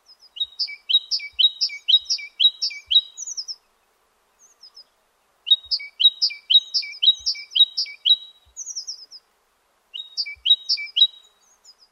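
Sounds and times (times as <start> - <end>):
great tit calling: 0.1 - 3.7, 5.5 - 9.2, 10.0 - 11.9.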